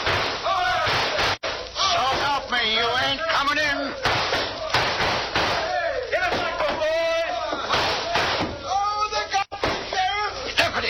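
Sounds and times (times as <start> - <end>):
sledgehammer smashing in a door: 0.0 - 2.4, 4.0 - 6.9, 7.7 - 8.6
voices: 0.4 - 10.8.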